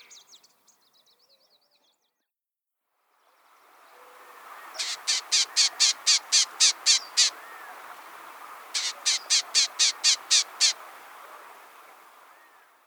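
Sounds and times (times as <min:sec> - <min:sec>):
Bell's Vireo: 0:03.8 - 0:12.7.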